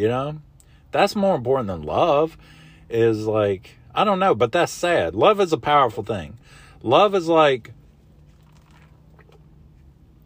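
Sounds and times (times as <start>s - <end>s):
speech: 0.0s - 7.8s
steady low hum: 0.0s - 10.2s
coffee slurping from a cup: 8.0s - 9.6s.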